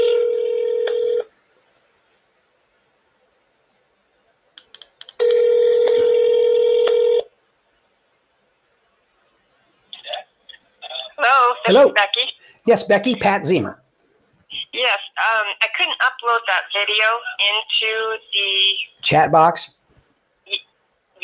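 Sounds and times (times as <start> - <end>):
telephone ringing through the line: 0.0 - 1.3, 5.2 - 7.3
speech: 11.8 - 13.8, 14.5 - 19.8.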